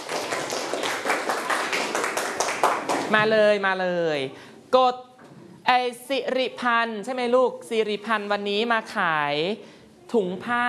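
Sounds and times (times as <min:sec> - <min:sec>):
room full of people clapping in a classroom: 0:00.0 - 0:03.2
speech: 0:03.1 - 0:05.1, 0:05.7 - 0:10.6.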